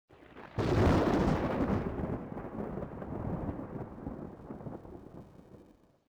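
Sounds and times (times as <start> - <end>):
thunder strike: 0.6 - 5.0.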